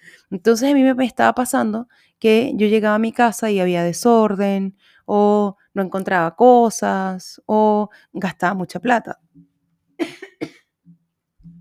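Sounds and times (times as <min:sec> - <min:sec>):
speech: 0:00.3 - 0:10.6
sharp coughs: 0:10.0 - 0:10.7.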